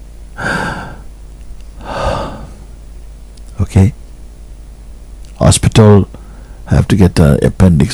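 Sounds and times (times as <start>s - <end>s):
heavy weakening labored breathing: 0.4s - 1.1s, 1.8s - 2.7s, 6.2s - 6.7s
speech: 3.6s - 4.0s, 5.8s - 7.9s.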